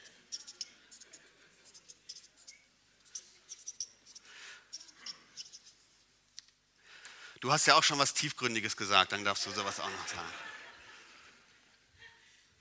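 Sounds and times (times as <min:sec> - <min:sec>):
pen writing on paper: 0:00.0 - 0:05.7
laughter: 0:00.7 - 0:01.8, 0:09.2 - 0:11.4
speech: 0:07.4 - 0:10.5.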